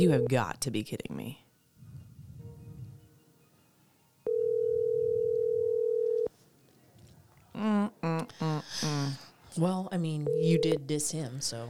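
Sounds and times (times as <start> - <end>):
phone ringing: 0.0 - 0.4, 4.3 - 6.3, 10.3 - 10.8
speech: 0.0 - 1.4, 7.6 - 11.6.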